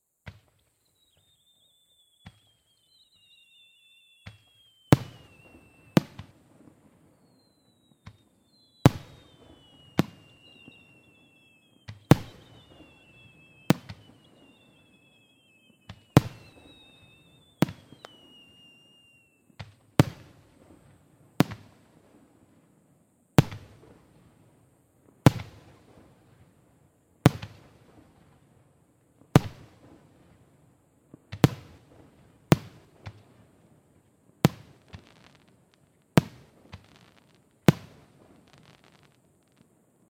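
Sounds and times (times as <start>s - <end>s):
fireworks: 0.2s - 40.0s.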